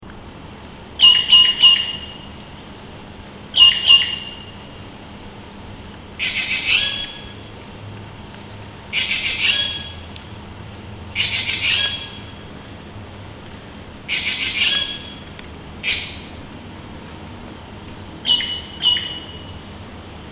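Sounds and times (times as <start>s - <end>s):
Cissa thalasina calling: 1.0s - 4.8s, 6.2s - 10.1s, 11.1s - 12.7s, 13.7s - 16.4s, 18.2s - 19.7s.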